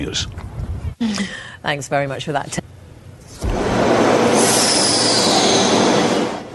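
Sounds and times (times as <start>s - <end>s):
speech: 0.0s - 0.4s, 1.0s - 2.6s
subway train rumbling past a station in Rome: 3.4s - 6.5s.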